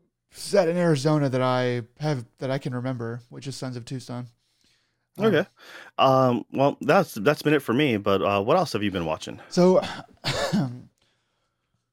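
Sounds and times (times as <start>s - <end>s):
speech: 0.4s - 4.4s, 5.2s - 10.8s
loud throaty cough: 9.8s - 10.9s.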